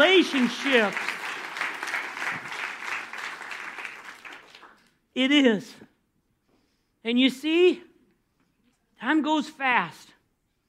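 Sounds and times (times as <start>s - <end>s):
audience applauding: 0.0s - 4.9s
speech: 0.2s - 1.2s, 5.2s - 5.9s, 7.0s - 7.9s, 9.0s - 10.1s.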